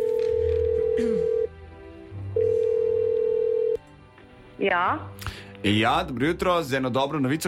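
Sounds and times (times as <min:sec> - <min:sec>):
telephone call ringback tones: 0:00.0 - 0:01.5, 0:02.4 - 0:03.8
speech: 0:01.0 - 0:01.3, 0:04.6 - 0:07.4.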